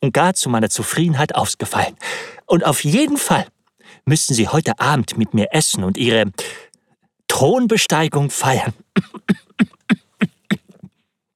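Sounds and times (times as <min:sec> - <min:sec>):
speech: 0:00.0 - 0:06.6, 0:07.3 - 0:09.4
man's coughing fit: 0:08.8 - 0:10.9.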